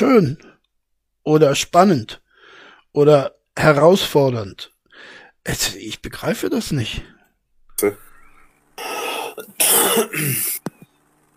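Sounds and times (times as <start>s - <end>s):
speech: 0.0s - 0.5s, 1.2s - 2.2s, 2.9s - 7.2s, 7.8s - 8.1s, 8.8s - 10.6s
person coughing after choking on something: 8.8s - 10.6s.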